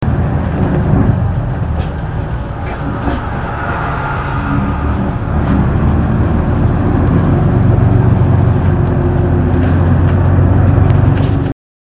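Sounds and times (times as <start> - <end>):
bus: 0.0 - 11.6.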